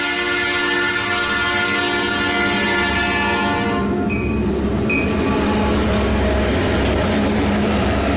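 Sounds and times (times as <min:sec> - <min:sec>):
train whistle blowing: 0:00.0 - 0:04.3, 0:05.0 - 0:05.8
rumble of a passing train: 0:00.0 - 0:08.1.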